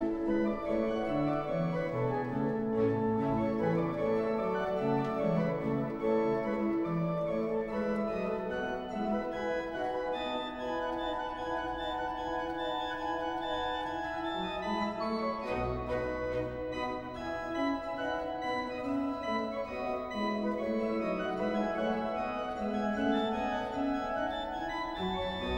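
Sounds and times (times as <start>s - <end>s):
organ concerto bourree: 0.0s - 25.5s.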